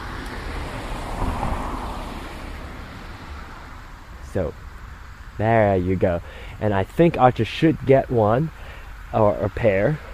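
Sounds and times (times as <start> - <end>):
car passing by with broad rushing road noise: 0.0 - 4.3
speech: 4.4 - 4.7, 5.4 - 10.1.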